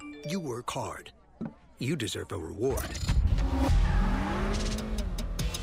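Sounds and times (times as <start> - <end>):
speech: 0.3 - 3.8
turbocharged 3.0-liter V6 sports sedan engine revving: 3.2 - 5.6.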